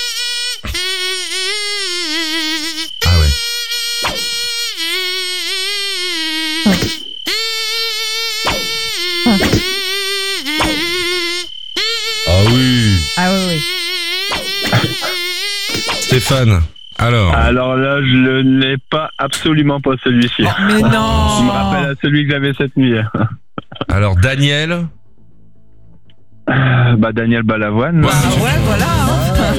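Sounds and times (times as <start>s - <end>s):
person humming a high nasal buzzing whine imitating a mosquito: 0.0s - 17.6s, 20.3s - 21.9s
speech: 6.7s - 7.0s, 16.2s - 23.4s, 24.0s - 25.0s, 26.5s - 29.1s.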